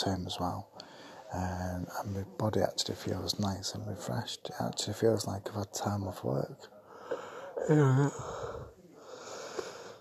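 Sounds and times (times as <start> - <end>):
speech: 0.0 - 8.5
big drawn-out yawn with a wavering voiced pitch: 7.1 - 8.7.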